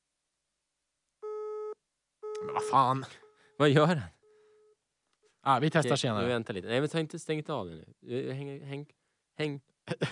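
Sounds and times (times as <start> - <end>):
telephone busy signal tone: 1.2 - 3.5
speech: 2.4 - 4.2, 5.4 - 10.1.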